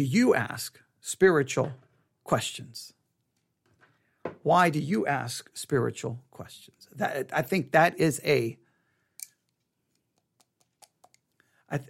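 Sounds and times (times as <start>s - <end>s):
speech: 0.0s - 3.0s, 4.2s - 8.6s
pencils being fiddled with in hand: 9.2s - 11.4s.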